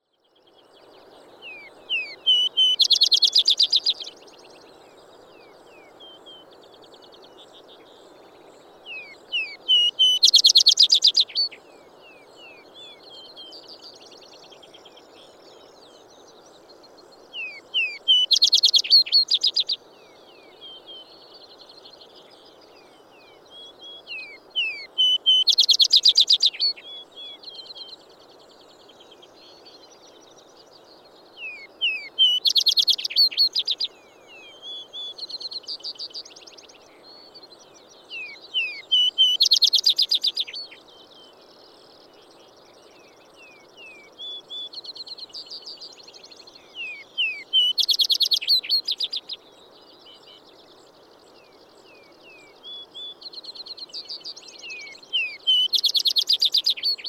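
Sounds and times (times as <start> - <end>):
vesper sparrow singing: 1.5 - 4.2, 8.9 - 11.6, 17.4 - 19.8, 23.6 - 28.0, 31.4 - 41.2, 42.4 - 57.0.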